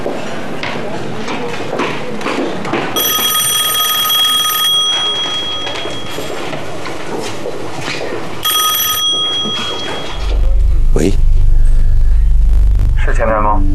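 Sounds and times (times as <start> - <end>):
busy noise: 0.0 - 13.6
telephone ringing with a shrill electronic trill: 3.0 - 6.9, 8.4 - 10.4.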